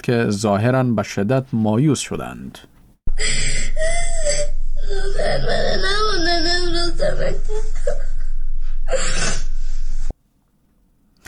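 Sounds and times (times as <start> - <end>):
speech: 0.0 - 3.8, 5.2 - 8.0, 8.9 - 9.4
girl sobbing and wailing loudly with gasping breaths: 3.1 - 9.7.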